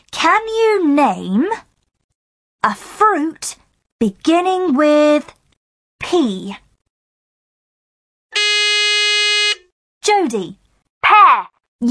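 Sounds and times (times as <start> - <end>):
speech: 0.2 - 1.7, 2.6 - 5.4, 6.0 - 6.6, 10.2 - 10.6
loud harsh electronic quiz buzzer blaring: 8.4 - 9.6.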